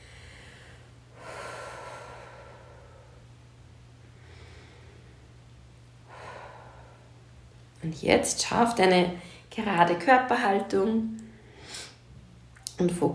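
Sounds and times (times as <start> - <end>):
deep breathing in through the nose and out through the mouth: 0.0 - 3.4, 4.0 - 5.4, 6.0 - 7.3
low steady hum: 0.0 - 13.1
speech: 7.8 - 11.8, 12.8 - 13.1.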